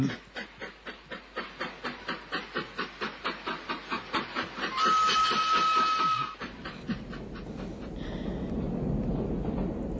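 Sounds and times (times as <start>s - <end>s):
continuous rushing hiss and rumble of a running train: 0.0s - 9.9s
steam locomotive chuffing in quick rhythmic puffs: 0.0s - 9.9s
steam locomotive whistle: 4.7s - 6.4s.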